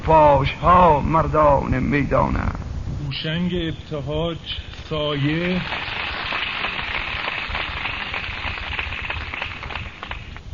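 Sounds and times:
speech: 0.1 - 5.9
heavy rain falling: 4.9 - 10.4.

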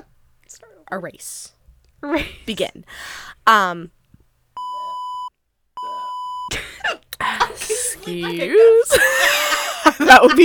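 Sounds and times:
speech: 0.5 - 4.0, 7.6 - 10.4
long steady electronic beeps: 4.6 - 6.5
person coughing: 6.5 - 7.8
laughter: 7.2 - 10.4.

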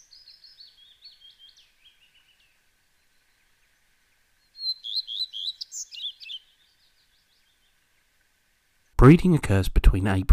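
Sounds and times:
male Common Redstart singing: 0.0 - 3.8, 4.4 - 7.8
speech: 9.0 - 10.3.

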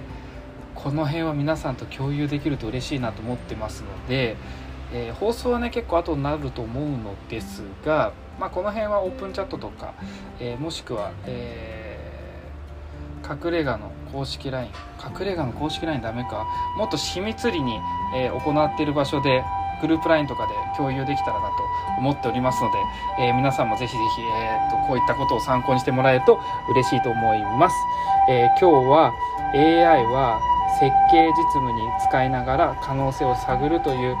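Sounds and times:
speech: 0.8 - 11.8, 13.3 - 34.1
ambulance siren wailing: 15.3 - 34.1.

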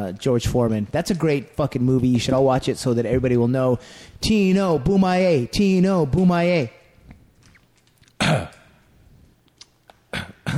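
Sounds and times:
speech: 0.0 - 6.8, 8.3 - 8.5
loud gravelly burp into a microphone: 8.2 - 8.7.

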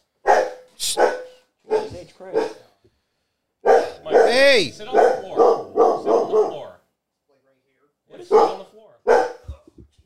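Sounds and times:
male dog barking: 0.1 - 2.7, 3.6 - 6.8, 8.2 - 9.6
speech: 2.0 - 3.0, 4.0 - 5.4.

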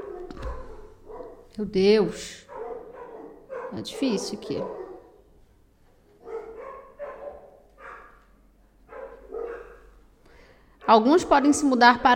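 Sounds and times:
several dogs barking in chorus: 0.0 - 1.6, 2.4 - 5.3, 6.2 - 10.0, 10.8 - 11.5
faint hum: 0.0 - 12.1
speech: 1.6 - 2.4, 3.7 - 4.8, 10.9 - 12.1.

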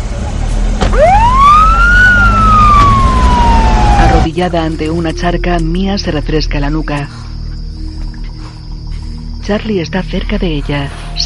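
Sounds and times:
low rumbling engine: 0.0 - 11.2
police patrol car siren wailing: 0.8 - 6.6
speech: 4.4 - 7.3, 9.5 - 11.2.

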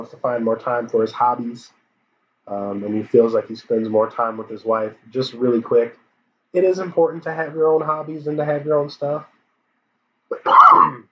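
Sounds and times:
speech: 0.0 - 1.8, 2.5 - 9.3, 10.3 - 11.1
person coughing harshly: 10.3 - 11.0.

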